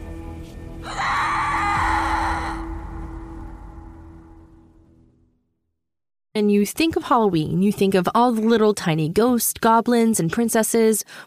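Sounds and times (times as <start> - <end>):
blood-curdling scream: 0.8 - 4.6
speech: 6.4 - 11.2.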